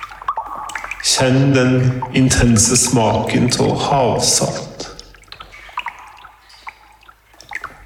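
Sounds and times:
soft wash of moving seawater: 0:00.0 - 0:07.8
water dripping inside a sea cave in Croatia: 0:00.0 - 0:07.8
speech: 0:01.0 - 0:04.7.

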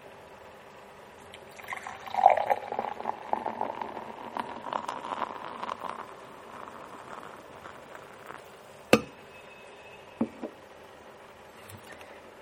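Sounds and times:
well-chilled beer pouring into a glass with a fizzing splashing wash: 0:01.3 - 0:09.2.

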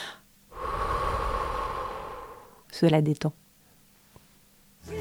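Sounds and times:
slow calming breath with a deliberately lengthened exhale: 0:00.0 - 0:02.6
speech: 0:02.8 - 0:03.4.

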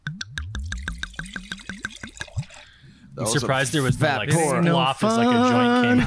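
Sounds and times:
wine glugging from a frosted-glass bottle into a glass: 0:00.7 - 0:02.8
speech: 0:03.2 - 0:06.0.

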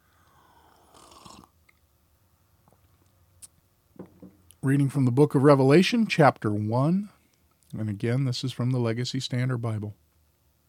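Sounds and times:
slurping sip of coffee: 0:00.4 - 0:01.5
speech: 0:04.6 - 0:10.0.

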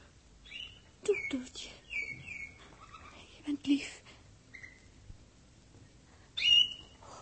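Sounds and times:
small pet bird singing a whistled note: 0:00.4 - 0:03.2, 0:04.5 - 0:04.9, 0:06.4 - 0:07.0
speech: 0:01.0 - 0:01.8, 0:03.5 - 0:04.0.

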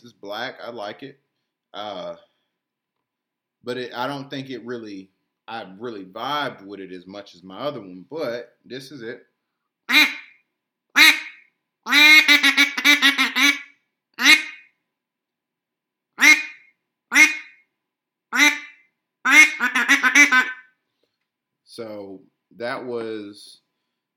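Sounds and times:
speech: 0:00.0 - 0:02.3, 0:03.6 - 0:09.3, 0:09.9 - 0:10.2, 0:21.8 - 0:23.6
black hunting duck call blown in bursts in 28-degree cold: 0:09.9 - 0:10.4, 0:11.0 - 0:14.7, 0:16.2 - 0:17.6, 0:18.3 - 0:20.7.

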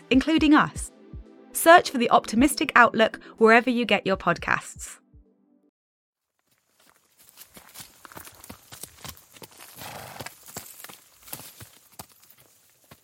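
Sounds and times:
speech: 0:00.1 - 0:00.9, 0:01.6 - 0:05.0
Shire horses' heavy hooves plodding through a meadow of long grass: 0:06.4 - 0:13.0.

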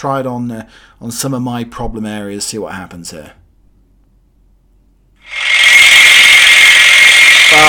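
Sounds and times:
speech: 0:00.0 - 0:03.4
handheld pneumatic massager whirring and buzzing: 0:05.2 - 0:07.6.

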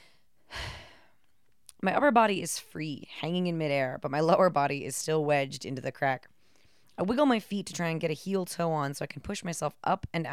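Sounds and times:
deep airy breath after exertion: 0:00.0 - 0:01.3, 0:06.4 - 0:07.0
speech: 0:01.8 - 0:06.3, 0:07.0 - 0:10.3.

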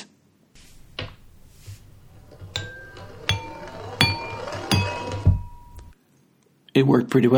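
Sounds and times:
marble clinking against glasses: 0:00.7 - 0:06.0
speech: 0:06.8 - 0:07.3.

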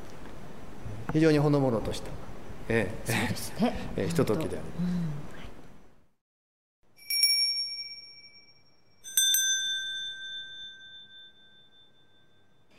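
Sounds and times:
speech: 0:01.1 - 0:05.2
small memorial service bell ringing: 0:06.9 - 0:12.7.

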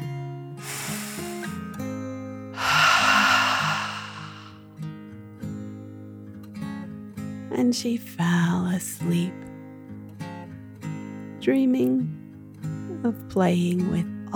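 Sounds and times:
deep slow calming breath in and out: 0:00.6 - 0:01.6, 0:02.6 - 0:04.6
speech: 0:07.6 - 0:09.5, 0:11.4 - 0:12.2, 0:13.0 - 0:14.3.

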